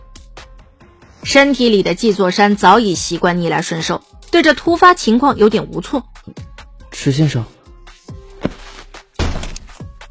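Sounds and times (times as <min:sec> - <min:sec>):
speech: 0:01.2 - 0:07.6
chair kicked away as someone stands up, knocking and scraping: 0:08.4 - 0:09.6.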